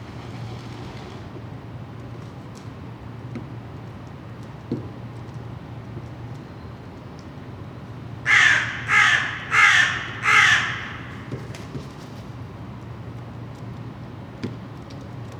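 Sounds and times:
crows cawing: 8.3 - 11.3.

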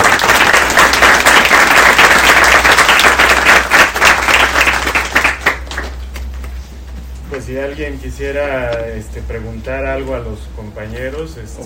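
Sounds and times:
audience applauding at the close of a talk: 0.0 - 6.2
speech: 7.5 - 11.6.

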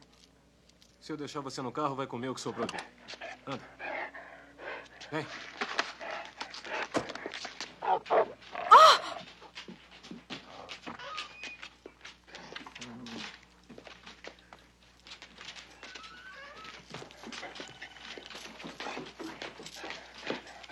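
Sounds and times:
speech: 1.1 - 3.8, 5.1 - 5.5
dog whimpering and panting: 2.4 - 9.5, 10.4 - 11.7, 15.4 - 20.7.

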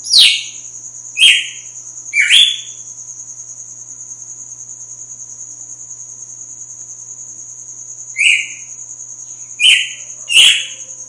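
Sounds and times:
constant shrill hum: 0.0 - 2.8, 8.1 - 8.8, 9.4 - 11.0
female red-cowled cardinal singing slurred whistled notes: 1.2 - 1.6, 2.2 - 2.7, 8.2 - 8.6, 9.6 - 10.7.

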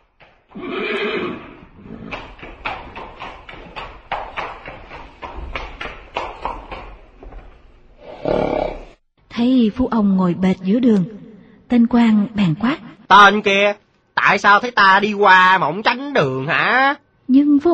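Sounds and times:
horse hooves clopping on a road: 0.0 - 7.7
official's horse whinnying on a road: 0.5 - 2.2, 8.0 - 9.0
speech: 9.4 - 17.7.

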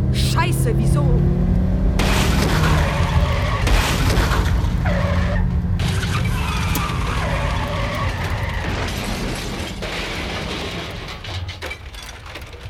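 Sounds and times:
speech: 0.4 - 1.6
taxi hit by a car, skidding and crashing: 2.0 - 12.6
tyres squealing: 2.4 - 9.6.

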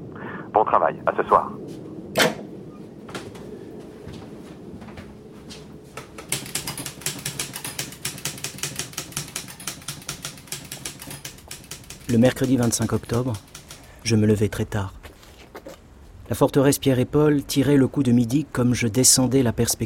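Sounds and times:
speech: 0.6 - 2.4, 12.1 - 15.0, 16.3 - 19.8
typing on a typewriter with carbon paper: 6.2 - 14.1.

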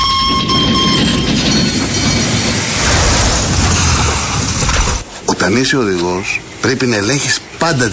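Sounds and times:
train running on rails: 0.0 - 5.3
speech: 5.5 - 7.9.

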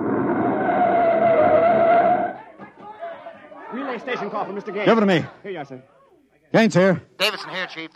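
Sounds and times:
car tires screeching while skidding to a stop: 0.0 - 2.5
speech: 4.0 - 7.9.

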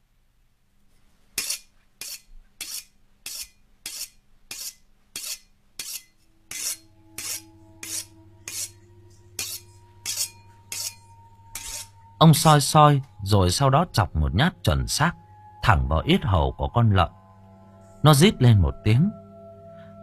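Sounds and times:
large butcher's knife sharpened on a whetstone before a pig slaughter: 1.4 - 12.0
speech: 12.2 - 17.2, 18.0 - 19.2.

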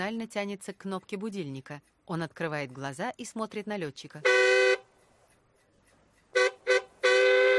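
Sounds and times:
speech: 0.0 - 4.8
truck horn honking: 4.2 - 4.9, 6.3 - 7.5.

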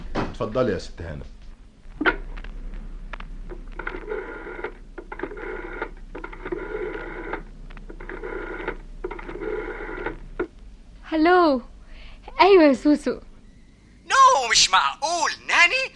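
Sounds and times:
low steady hum: 0.0 - 15.9
speech: 0.4 - 1.4, 11.2 - 11.7, 12.4 - 13.3, 14.5 - 15.9
telephone being dialed with faint rhythmic buzzing bursts: 3.5 - 10.5.

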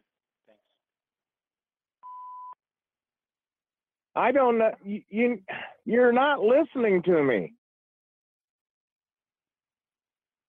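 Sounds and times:
answering machine beep before a message: 2.0 - 2.6
speech: 4.2 - 7.6.

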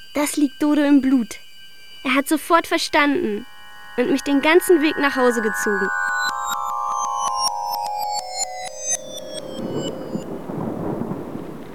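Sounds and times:
pulsing electronic tone: 0.0 - 10.9
speech: 0.2 - 1.4, 2.0 - 6.0
rain falling on a street during a thunderstorm: 9.4 - 11.7.

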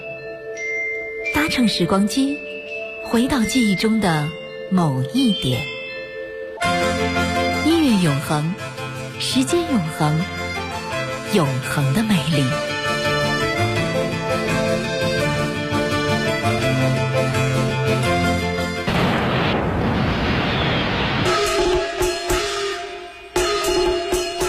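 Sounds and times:
music: 0.0 - 24.4
speech: 1.5 - 2.5, 3.1 - 5.7, 8.0 - 10.4, 11.3 - 12.7
Spring Festival New Year fireworks and firecrackers bursting: 18.9 - 22.4.

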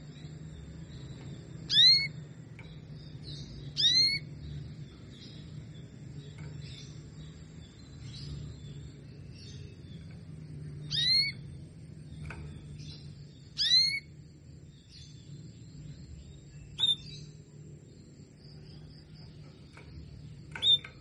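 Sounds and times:
low background hum: 0.0 - 21.0
female Belgian canary giving bright sliding call notes: 10.9 - 11.4, 13.6 - 14.1.

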